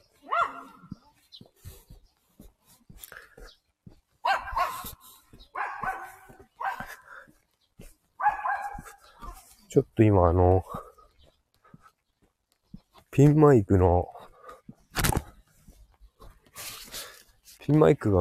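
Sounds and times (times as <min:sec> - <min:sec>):
outdoor ambience on a fine pleasant day: 0:00.0 - 0:18.1
dogs on walks barking in short bursts: 0:00.2 - 0:01.0, 0:04.2 - 0:07.4, 0:08.2 - 0:09.5
speech: 0:09.7 - 0:10.8, 0:13.2 - 0:14.1, 0:17.7 - 0:18.1.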